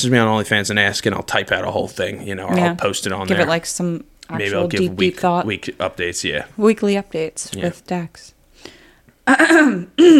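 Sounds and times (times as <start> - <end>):
speech: 0.0 - 10.1
person clearing throat: 9.3 - 10.1.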